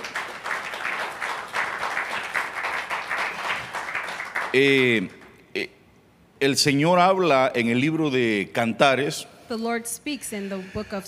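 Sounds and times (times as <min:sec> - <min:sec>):
audience applauding: 0:00.0 - 0:05.2
speech: 0:04.5 - 0:05.8, 0:06.4 - 0:11.0.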